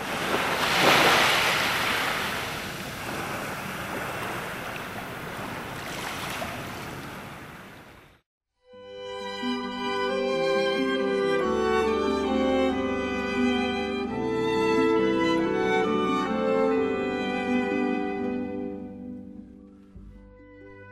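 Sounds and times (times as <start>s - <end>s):
huge ocean wave crashing: 0.0s - 7.6s
soft tonal music: 8.6s - 20.8s.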